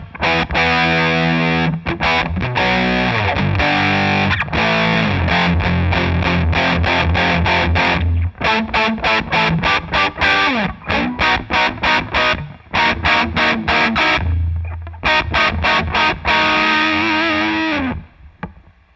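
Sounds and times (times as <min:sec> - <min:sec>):
heavily distorted electric guitar chord through a fuzz pedal with buzz circuit on: 0:00.3 - 0:18.0.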